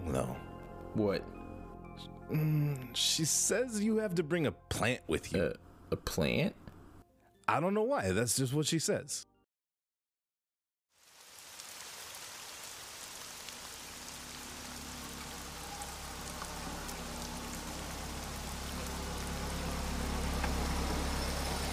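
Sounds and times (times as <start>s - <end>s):
speech: 0.1s - 1.4s, 2.0s - 6.6s, 7.5s - 9.3s
steady heavy evening rain spattering on surfaces: 11.0s - 21.7s
Toyota Corolla engine rumble pulling into a parallel parking spot: 14.7s - 21.7s.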